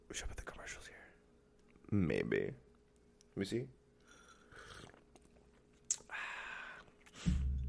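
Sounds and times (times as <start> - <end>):
speech: 0.1 - 1.0, 1.9 - 2.6, 3.4 - 3.8
person slurping a hot drink: 4.2 - 5.1.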